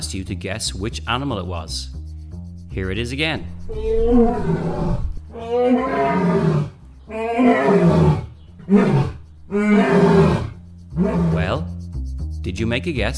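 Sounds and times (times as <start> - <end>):
speech: 0.1 - 2.0, 2.8 - 10.4, 12.4 - 13.1
Asian lion roaring at a zoo in Dublin: 3.6 - 11.7.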